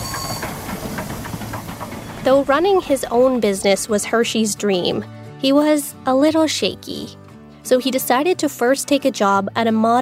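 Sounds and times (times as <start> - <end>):
train wheels clattering along rails: 0.0 - 5.0
speech: 2.2 - 10.0.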